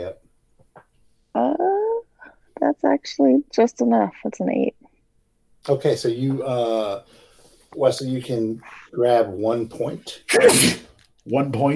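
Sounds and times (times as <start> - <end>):
speech: 2.6 - 4.8, 5.6 - 11.7
sneeze: 10.3 - 10.9.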